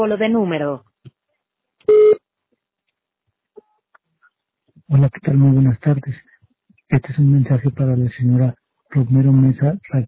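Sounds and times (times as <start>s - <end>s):
speech: 0.0s - 0.9s, 4.9s - 6.3s, 6.9s - 10.0s
voicemail recording tone on a telephone line: 1.9s - 2.2s.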